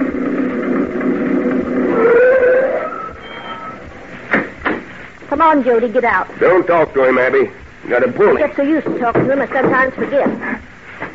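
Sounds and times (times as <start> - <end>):
old truck engine droning and whining as it pulls up: 0.0 - 4.2
speech: 5.4 - 11.1.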